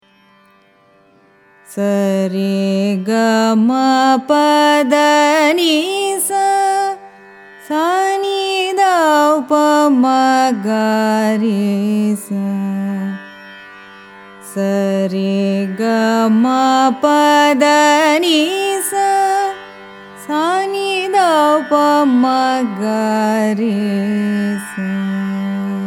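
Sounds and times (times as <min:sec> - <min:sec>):
carnatic raga ascending and descending scale: 0:01.6 - 0:25.8.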